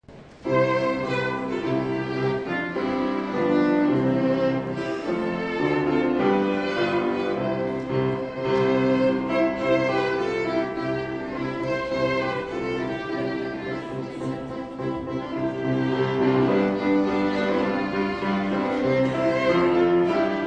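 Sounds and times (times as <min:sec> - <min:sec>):
violin prelude: 0:00.3 - 0:20.4.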